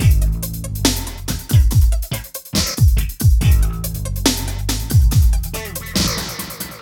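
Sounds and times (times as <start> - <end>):
ambient groove music: 0.0 - 6.7.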